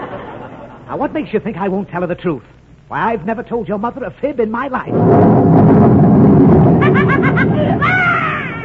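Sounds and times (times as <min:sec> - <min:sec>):
speech: 0:00.9 - 0:06.5
loud deep rumble of thunder: 0:04.9 - 0:08.6
rhythmic laugh-like vocal bursts: 0:06.8 - 0:08.6
rising wavering cry: 0:06.8 - 0:08.6.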